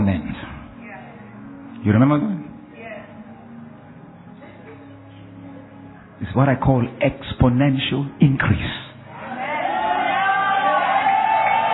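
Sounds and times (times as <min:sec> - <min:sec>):
speech: 0:01.8 - 0:02.4, 0:06.3 - 0:08.8
large church audience shouting and cheering: 0:09.0 - 0:11.7.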